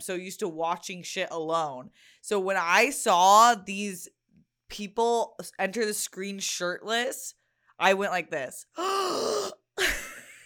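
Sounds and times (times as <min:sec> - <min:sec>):
speech: 0:00.0 - 0:09.6
person doing a loud vocal imitation of a sharp gasp: 0:08.8 - 0:09.6.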